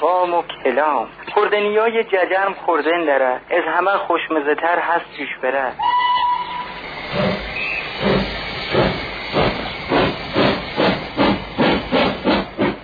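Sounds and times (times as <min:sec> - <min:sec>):
speech: 0:00.0 - 0:05.9
steam locomotive chuffing as it gains speed: 0:05.8 - 0:12.8.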